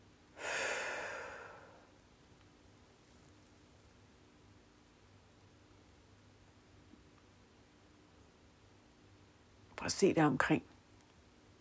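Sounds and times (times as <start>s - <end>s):
deep airy breath during a guided meditation: 0.4s - 1.9s
speech: 9.8s - 10.7s.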